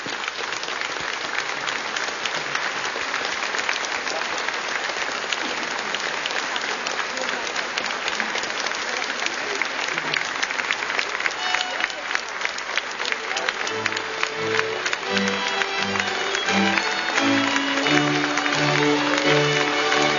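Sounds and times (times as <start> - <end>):
sustained applause from a large standing audience: 0.0 - 20.1.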